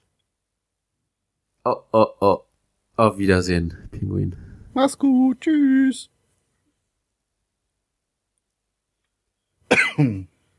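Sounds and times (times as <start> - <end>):
speech: 1.6 - 2.4, 3.0 - 6.1, 10.0 - 10.3
person coughing: 9.7 - 10.3.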